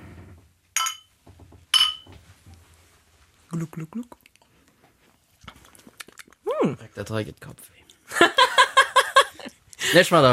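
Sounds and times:
glasses clinking during a toast: 0:00.8 - 0:01.1, 0:01.7 - 0:02.2
speech: 0:03.5 - 0:04.2, 0:06.6 - 0:08.2, 0:09.9 - 0:10.3
laughter: 0:08.1 - 0:10.3.

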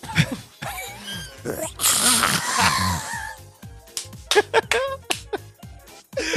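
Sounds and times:
laughter: 0:00.0 - 0:01.0, 0:04.3 - 0:05.4, 0:06.2 - 0:06.3
person imitating a lion roar: 0:00.8 - 0:03.4.

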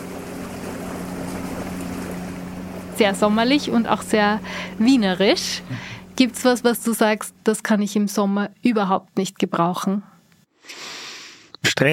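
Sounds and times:
water of the Neue Donau river in Vienna lapping and flowing: 0:00.0 - 0:06.8
faint low hum: 0:00.0 - 0:10.2
speech: 0:03.0 - 0:10.9, 0:11.6 - 0:11.9.

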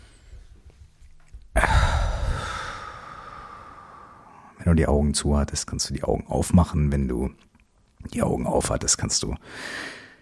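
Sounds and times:
deep relaxed breath during a guided relaxation exercise: 0:01.6 - 0:04.6, 0:09.4 - 0:10.2
speech: 0:04.6 - 0:10.0.

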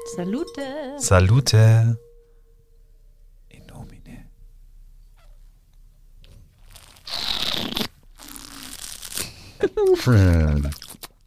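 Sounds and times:
speech: 0:00.1 - 0:02.1, 0:09.6 - 0:10.8
slurping a drink while tasting: 0:06.7 - 0:09.4, 0:10.6 - 0:11.2.

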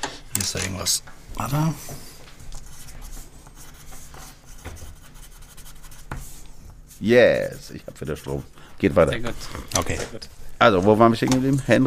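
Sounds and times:
speech: 0:00.4 - 0:02.1, 0:07.0 - 0:11.8
pen scratching on paper: 0:02.6 - 0:09.0.

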